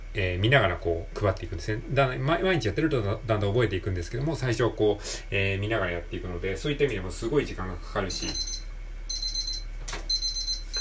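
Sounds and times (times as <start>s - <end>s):
speech: 0.2s - 8.6s
kitchen timer beeping in rapid high-pitched electronic bursts: 8.1s - 10.7s.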